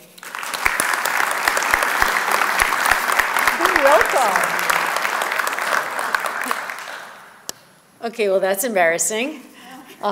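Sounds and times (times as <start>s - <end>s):
room full of people applauding: 0.0s - 7.5s
speech: 4.2s - 4.5s, 8.0s - 10.1s.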